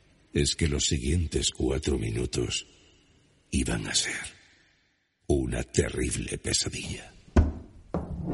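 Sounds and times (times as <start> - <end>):
speech: 0.3 - 2.8, 3.5 - 4.4, 5.3 - 7.2
sharp solid knocking on a door: 7.4 - 8.2.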